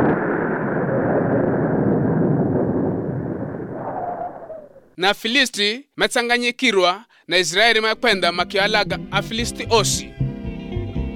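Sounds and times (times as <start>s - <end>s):
bomb-like explosion rumble: 0.0s - 5.0s
speech: 5.0s - 10.2s.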